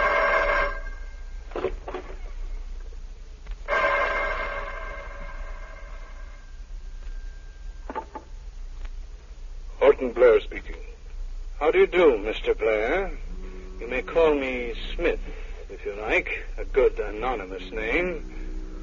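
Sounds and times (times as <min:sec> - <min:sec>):
telephone ringing: 0:00.0 - 0:01.2, 0:03.7 - 0:06.0
speech: 0:10.0 - 0:10.9, 0:11.6 - 0:18.4.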